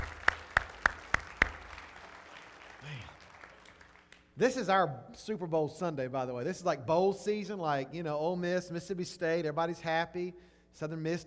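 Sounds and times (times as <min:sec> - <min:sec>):
hand claps: 0:00.0 - 0:04.4
speech: 0:04.4 - 0:11.2.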